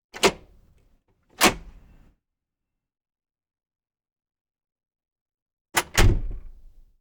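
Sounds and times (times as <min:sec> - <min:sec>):
alley door: 0:00.2 - 0:00.5, 0:05.8 - 0:06.7.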